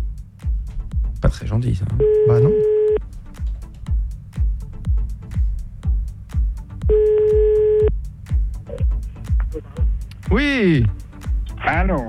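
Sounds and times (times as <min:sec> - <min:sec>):
loud regular thumping beat: 0:00.0 - 0:12.0
speech: 0:01.3 - 0:02.8, 0:10.4 - 0:11.0
telephone tone while dialing a caller back: 0:02.0 - 0:03.0, 0:06.9 - 0:07.9.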